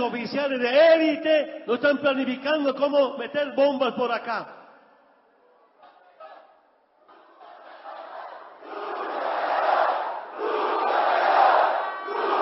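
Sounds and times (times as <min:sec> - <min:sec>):
speech: 0:00.0 - 0:04.6
large crowd shouting a protest chant indoors inside congress: 0:05.8 - 0:12.4.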